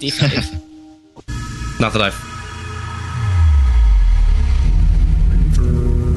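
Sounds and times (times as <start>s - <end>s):
speech: 0.0s - 0.7s, 1.8s - 2.3s
cinematic music score: 0.0s - 6.1s
deep rumbling bass drop: 1.4s - 6.1s.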